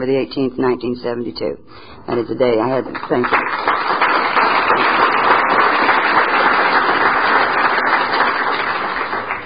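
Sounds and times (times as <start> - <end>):
speech: 0.0 - 3.9
large audience applauding: 3.0 - 9.4.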